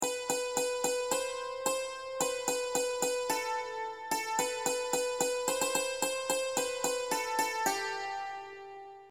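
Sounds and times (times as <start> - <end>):
five-string banjo melody: 0.0 - 9.1.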